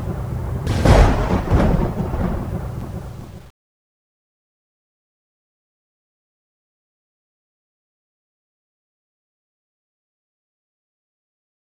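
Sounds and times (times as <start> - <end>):
lightning: 0.0 - 3.5.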